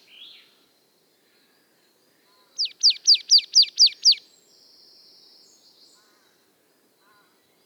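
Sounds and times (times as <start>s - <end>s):
Marsh Tit Poecile palustris calling high descending chipping notes: 2.6s - 4.2s.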